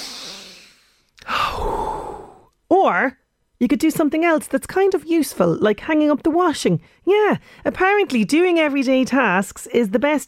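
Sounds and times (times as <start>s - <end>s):
deep breath in and out: 0.0s - 2.5s
speech: 2.8s - 10.2s.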